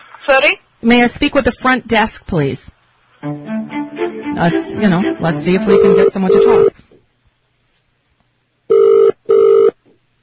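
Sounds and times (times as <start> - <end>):
speech: 0.3 - 3.8, 4.4 - 6.9
phone ringback electronic ringing tones: 5.7 - 6.7, 8.7 - 9.7.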